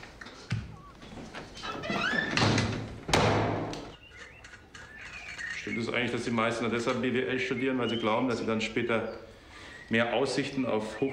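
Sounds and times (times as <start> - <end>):
door creaking and squeaking as it swings shut with a solid thud: 1.6 - 3.9
speech: 5.7 - 9.3, 9.9 - 11.1.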